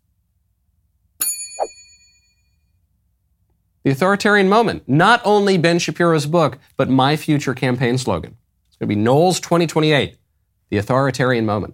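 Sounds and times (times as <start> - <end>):
bright bell ding with shimmering metallic tail: 1.2 - 2.7
speech: 3.8 - 11.7.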